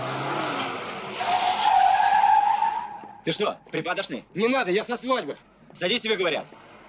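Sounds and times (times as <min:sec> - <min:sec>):
car engine revving: 0:00.0 - 0:01.8
car tires squealing as the vehicle skids: 0:00.0 - 0:03.6
speech: 0:03.2 - 0:06.8.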